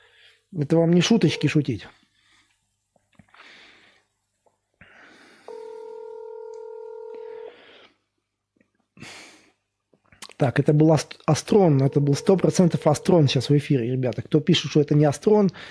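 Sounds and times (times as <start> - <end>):
speech: 0.5 - 2.0, 10.4 - 15.6
steady electronic telephone dialing tone: 1.1 - 1.6, 5.5 - 7.5, 11.8 - 13.3.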